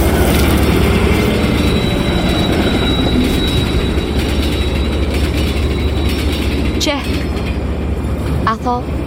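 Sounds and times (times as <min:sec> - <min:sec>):
thin high metallic whine of a train: 0:00.0 - 0:08.7
1,000-ton train rushing past: 0:00.0 - 0:09.0
speech: 0:08.7 - 0:09.0.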